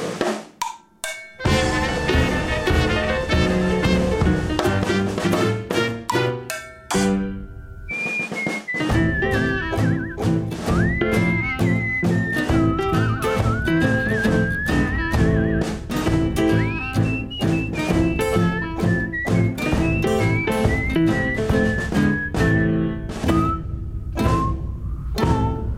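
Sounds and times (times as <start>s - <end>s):
dense music backing with regular thumping beat: 0.2s - 7.3s, 8.2s - 23.6s
person whistling a sliding wavering melody: 7.9s - 25.7s.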